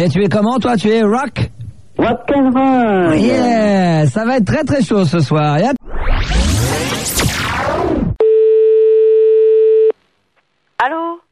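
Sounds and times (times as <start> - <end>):
speech: 0.0 - 6.3
loud burst of sweeping whooshing sound: 5.8 - 8.2
steady telephone line tone while calling a friend: 8.2 - 10.0.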